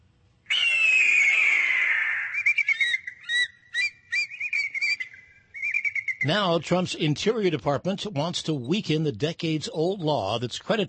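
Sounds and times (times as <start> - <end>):
bald eagle screech: 0.5 - 5.0
speech: 6.2 - 10.8.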